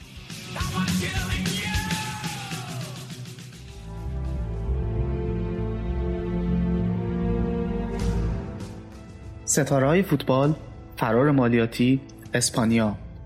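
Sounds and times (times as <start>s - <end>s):
heavy metal passage with drums and distorted guitar chords: 0.0s - 13.2s
shouted heavy metal vocals: 0.8s - 3.1s
speech: 9.5s - 13.0s.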